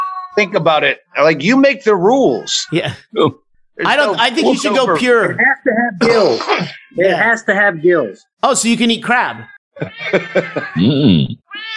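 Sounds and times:
cat meowing: 0:00.0 - 0:00.5, 0:06.5 - 0:07.2, 0:09.4 - 0:10.9, 0:11.5 - 0:11.7
speech: 0:00.4 - 0:11.7
laughter: 0:03.9 - 0:06.6, 0:09.8 - 0:11.3.

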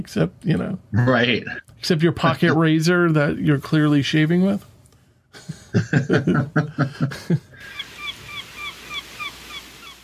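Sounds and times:
speech: 0:00.0 - 0:04.7, 0:05.3 - 0:07.8
laughter: 0:05.4 - 0:07.8
seagulls calling: 0:07.6 - 0:10.0.

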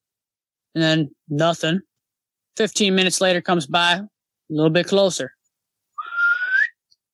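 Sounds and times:
speech: 0:00.7 - 0:01.9, 0:02.6 - 0:05.4
person imitating a rising whistle heard outside a tent: 0:06.0 - 0:06.8.

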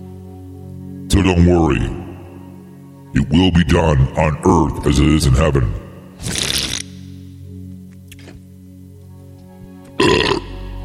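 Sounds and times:
speech: 0:01.2 - 0:02.0, 0:03.1 - 0:06.4
loud throaty belches: 0:10.0 - 0:10.6.

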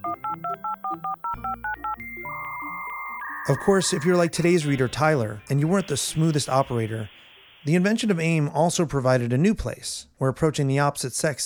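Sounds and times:
dial-up modem dual-tone dialing beeps: 0:00.0 - 0:08.0
speech: 0:03.4 - 0:11.4
low hum: 0:03.5 - 0:08.8.

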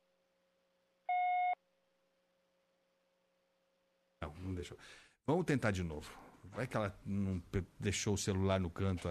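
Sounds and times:
voicemail tone electronic beep on a phone call: 0:01.1 - 0:01.6
speech: 0:04.3 - 0:09.1.

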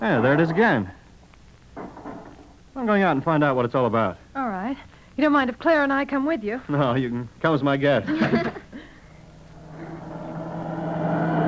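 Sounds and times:
speech: 0:00.0 - 0:01.0, 0:02.8 - 0:08.6
laughter: 0:07.9 - 0:09.1
cars speeding past on a road through farmland in the dark: 0:10.1 - 0:11.4.

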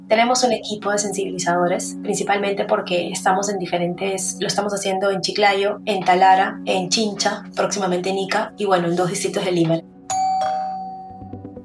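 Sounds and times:
speech: 0:00.1 - 0:09.9
two-tone doorbell chime at a house door: 0:10.1 - 0:11.4.

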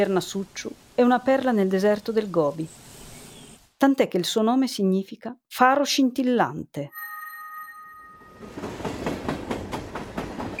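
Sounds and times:
speech: 0:00.0 - 0:02.8, 0:03.8 - 0:07.0
sustained ringing tone: 0:06.9 - 0:08.8
train wheels clattering on rails: 0:08.4 - 0:10.5.

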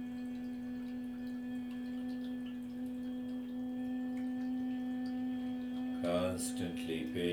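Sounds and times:
low steady vocal humming during a guided breathing exercise: 0:00.0 - 0:07.3
speech: 0:06.0 - 0:07.3.

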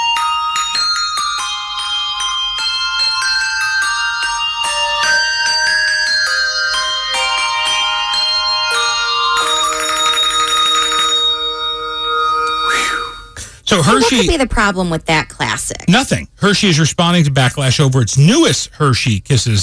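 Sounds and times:
bells playing a Christmas carol melody: 0:00.0 - 0:14.3
speech: 0:13.8 - 0:19.6.

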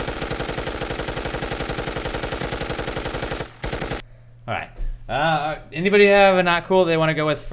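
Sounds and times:
rapid automatic gunfire: 0:00.0 - 0:04.0
speech: 0:04.5 - 0:07.5.

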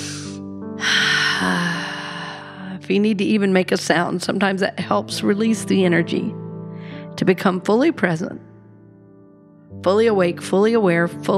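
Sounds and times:
long deep breath taken as a relaxation exercise: 0:00.0 - 0:02.8, 0:06.7 - 0:07.1
speech: 0:02.9 - 0:06.4, 0:07.2 - 0:08.5, 0:09.8 - 0:11.3.

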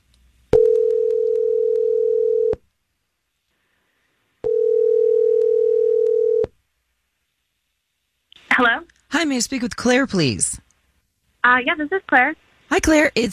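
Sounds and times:
telephone ringback tone while calling someone: 0:00.6 - 0:02.6, 0:04.4 - 0:06.5
speech: 0:08.6 - 0:10.7, 0:11.4 - 0:13.3.

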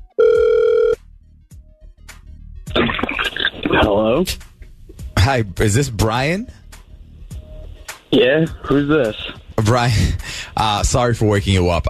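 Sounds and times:
buzzy ringback tone of an outgoing phone call: 0:00.0 - 0:01.0
crackling static as the call connects: 0:02.7 - 0:04.3
speech: 0:03.8 - 0:04.5, 0:05.3 - 0:06.6, 0:08.1 - 0:11.8.

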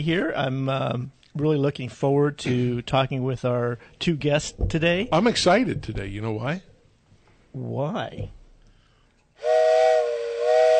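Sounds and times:
speech: 0:00.0 - 0:06.7, 0:07.5 - 0:08.4
steam train whistle blasting: 0:09.4 - 0:10.7.

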